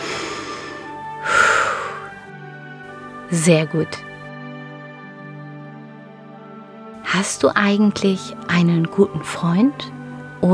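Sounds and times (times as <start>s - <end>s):
deep breath in and out: 0.0s - 2.2s
speech: 3.3s - 4.1s, 7.2s - 10.5s.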